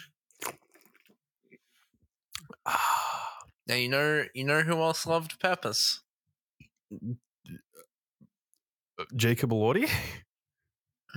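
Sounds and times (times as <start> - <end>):
soft wet mouth clicks and gulps: 0.3 - 1.2, 2.3 - 2.6
person sipping soda: 2.3 - 3.5
speech: 3.7 - 6.0, 7.0 - 7.6, 9.0 - 10.2.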